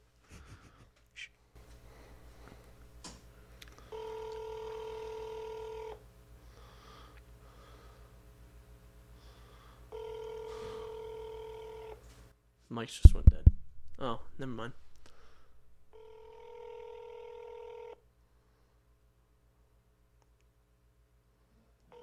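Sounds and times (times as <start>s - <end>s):
faint breaths: 1.7s - 2.8s, 6.4s - 8.2s, 9.1s - 11.0s, 15.0s - 15.6s, 18.3s - 18.9s
phone line ringback tone after dialing a toll-free number: 3.9s - 6.0s, 9.9s - 12.0s, 15.9s - 18.0s
speech: 12.8s - 14.8s.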